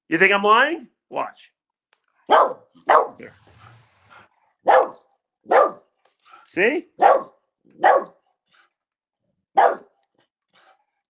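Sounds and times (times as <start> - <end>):
speech: 0.1 - 1.6, 2.3 - 3.5, 4.6 - 5.8, 6.5 - 8.2
female dog barking: 2.2 - 3.4, 4.6 - 5.9, 7.0 - 8.2, 9.5 - 10.0.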